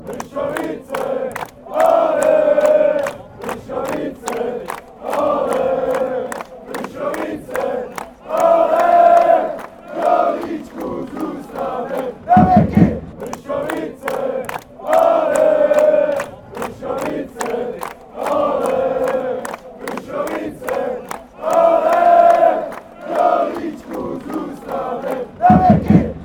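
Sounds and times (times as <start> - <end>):
crowd chanting: 0.0 - 26.2.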